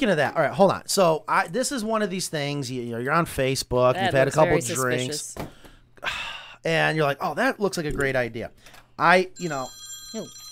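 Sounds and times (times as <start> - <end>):
speech: 0.0 - 10.4
voices calling out loudly: 4.0 - 5.4
phone ringing with steady high electronic tone: 9.4 - 10.5.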